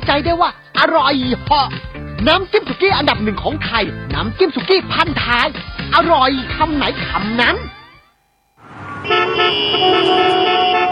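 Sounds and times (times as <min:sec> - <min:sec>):
speech: 0:00.0 - 0:07.8
several car horns honking in a traffic jam on the drive to Korat, Thailand: 0:08.6 - 0:10.9.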